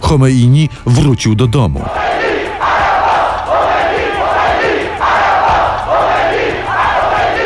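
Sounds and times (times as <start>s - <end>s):
speech: 0.1s - 2.2s
dense roar of many voices: 1.9s - 7.4s
huge crowd chanting in loud rhythmic unison: 1.9s - 7.4s.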